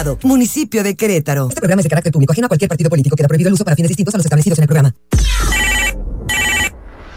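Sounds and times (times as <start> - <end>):
speech: 0.0 - 5.3
telephone ringing in a radio station booth in Querétaro: 5.5 - 6.8.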